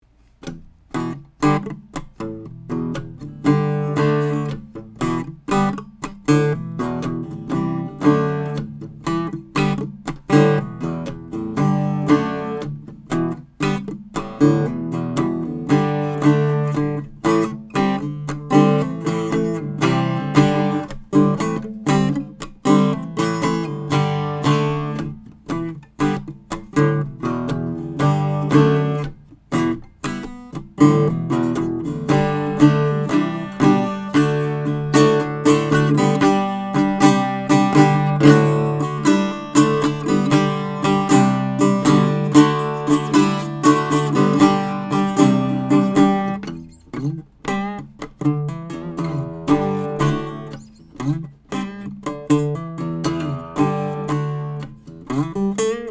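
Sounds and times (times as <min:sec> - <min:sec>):
1930 Wards Airline flattop acoustic guitar playing: 0:00.0 - 0:55.8.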